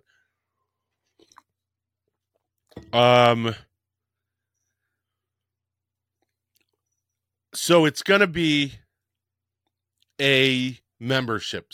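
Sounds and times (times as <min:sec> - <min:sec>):
person sipping coffee with wet slurping mouth noises: 0:01.0 - 0:01.6
speech: 0:02.9 - 0:03.7, 0:07.7 - 0:08.8, 0:10.2 - 0:11.7.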